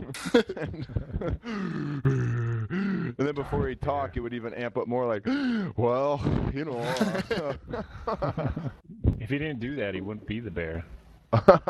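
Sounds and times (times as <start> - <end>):
laughter: 0.0 - 1.7, 6.7 - 8.8, 11.4 - 11.6
speech: 0.3 - 1.4, 3.5 - 11.6
person imitating heavy breathing into a microphone: 1.3 - 3.2, 5.2 - 7.1.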